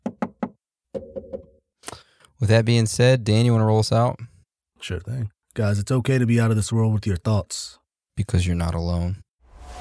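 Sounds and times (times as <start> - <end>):
knocking on wood: 0.0 - 1.5
speech: 2.4 - 9.2.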